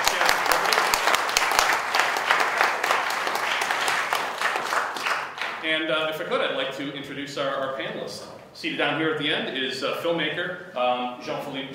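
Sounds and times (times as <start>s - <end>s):
audience applause at a panel discussion: 0.0s - 5.6s
speech: 5.7s - 11.7s.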